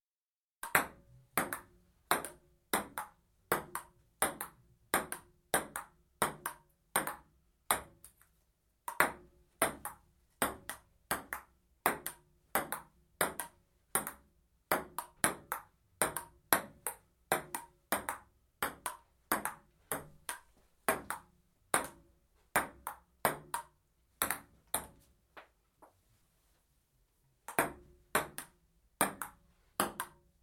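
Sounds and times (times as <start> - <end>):
amateurs playing table tennis: 0.6 - 7.9, 8.9 - 22.0, 22.6 - 25.0, 27.5 - 30.2.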